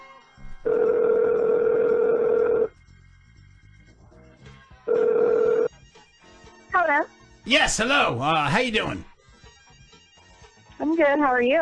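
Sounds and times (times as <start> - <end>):
phone line ringback tone on an outgoing call: 0.7 - 2.7, 4.9 - 5.7
speech: 7.5 - 9.1, 10.9 - 11.6.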